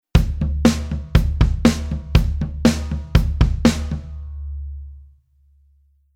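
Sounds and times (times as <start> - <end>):
8beat rhythm: 0.2 - 4.4.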